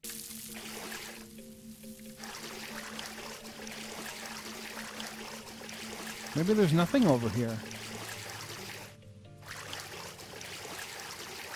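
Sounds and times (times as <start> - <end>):
water trickling and pouring: 0.0 - 11.5
speech: 6.4 - 7.7.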